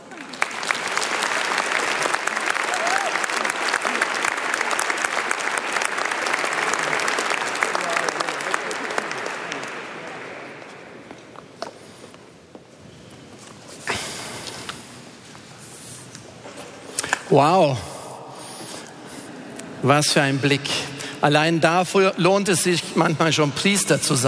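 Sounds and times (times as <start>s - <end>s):
large audience applauding in a full church to welcome a priest: 0.0s - 11.1s
speech: 17.4s - 17.9s, 19.8s - 24.2s.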